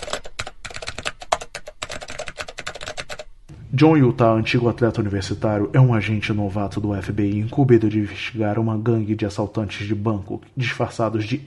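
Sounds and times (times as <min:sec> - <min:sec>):
rapid keyboard typing with sharp clicking keystrokes: 0:00.0 - 0:03.5
speech: 0:03.7 - 0:11.4.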